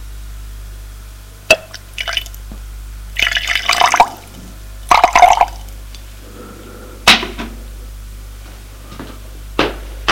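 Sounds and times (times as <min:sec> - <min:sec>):
water poured into a glass: 0:01.6 - 0:02.4, 0:03.2 - 0:05.7.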